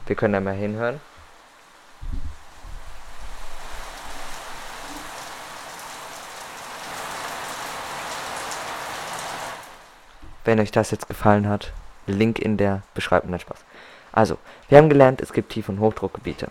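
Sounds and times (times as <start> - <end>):
heavy rain pouring down: 0.0 - 10.4
speech: 0.1 - 1.1, 10.4 - 16.4
low thumps: 2.0 - 2.9.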